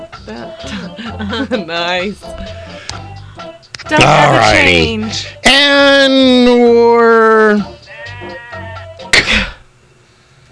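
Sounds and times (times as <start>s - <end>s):
speech: 0.3s - 2.7s, 3.8s - 7.7s
sheep bleating over a speaker: 7.8s - 9.0s.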